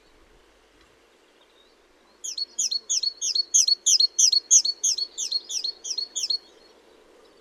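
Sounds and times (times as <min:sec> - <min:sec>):
great tit Parus major giving sharp high notes: 0:02.2 - 0:06.4.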